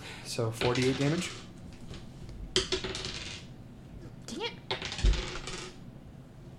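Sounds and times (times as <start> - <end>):
speech: 0.3 - 1.5
dice clattering across a hard tabletop: 0.6 - 2.0, 2.6 - 3.5, 4.7 - 5.8.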